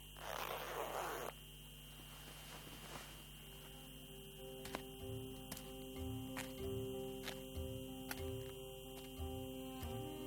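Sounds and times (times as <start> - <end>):
jacket hood zipper being pulled up: 0.1 - 1.3
soft footsteps: 1.8 - 10.1.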